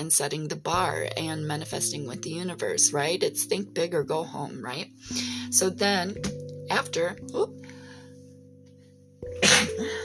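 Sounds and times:
speech: 0.0s - 7.7s
sneeze: 9.4s - 9.8s.

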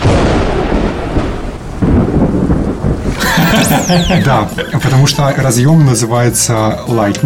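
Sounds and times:
thunder crackling burst: 0.0s - 5.2s
thunder rumbling: 0.0s - 5.9s
laughter: 3.1s - 7.2s
speech: 3.9s - 7.2s.

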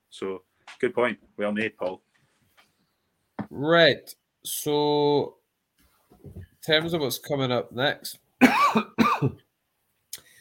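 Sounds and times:
speech: 0.1s - 2.1s, 3.5s - 5.4s, 6.2s - 9.4s
person coughing: 8.4s - 9.4s
throat clearing: 8.4s - 9.4s.

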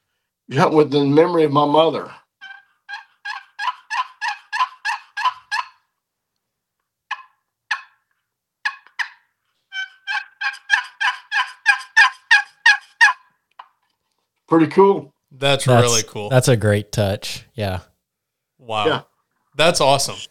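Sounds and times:
speech: 0.5s - 2.2s, 14.5s - 17.9s, 18.6s - 20.2s
turkey box call played for hunting, raspy yelping: 2.4s - 5.8s, 7.1s - 8.0s, 8.6s - 13.3s.

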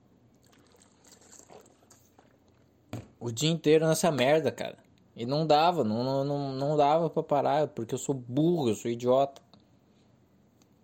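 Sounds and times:
person sipping water: 0.3s - 2.8s
speech: 3.2s - 9.4s.

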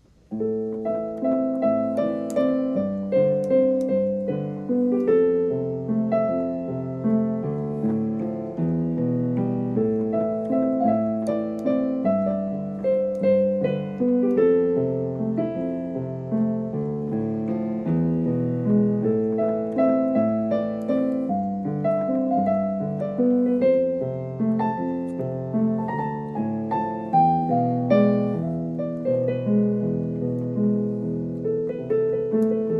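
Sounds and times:
self-composed piano piece: 0.0s - 32.7s.

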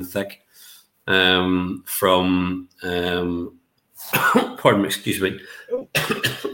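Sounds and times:
speech: 0.0s - 6.5s
strained throaty coughs: 4.1s - 4.6s, 5.8s - 6.5s.

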